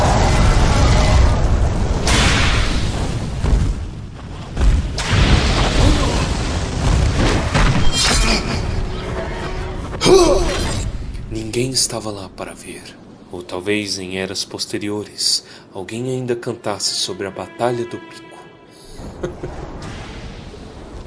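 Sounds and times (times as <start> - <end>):
explosion bursting into flames during a battle on a mountain peak: 0.0 - 13.2, 19.0 - 21.0
speech: 11.8 - 18.3, 19.0 - 19.8
laughter: 19.0 - 19.6.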